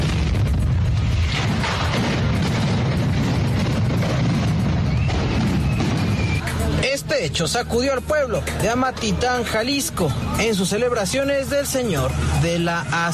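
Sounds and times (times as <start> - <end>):
sharp crackles and pops from a firecracker explosion: 0.0 - 6.8
firecracker explosion at a street food stall: 0.0 - 7.2
speech: 7.2 - 13.1.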